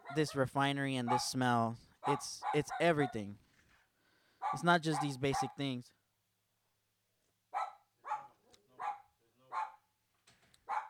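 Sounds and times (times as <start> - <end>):
dog barking: 0.0 - 0.4, 1.0 - 1.4, 2.0 - 3.3, 4.4 - 5.6, 7.5 - 9.9, 10.6 - 10.8
speech: 0.1 - 3.4, 4.5 - 6.0.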